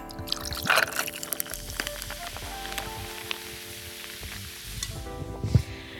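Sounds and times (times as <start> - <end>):
ice clinking in glass: 0.1 - 2.1
salty grapefruit soda poured over ice and whisky in a glass: 0.1 - 4.9
crackling sizzle of soda bubbles: 0.1 - 5.9
liquid gurgles: 0.2 - 3.4.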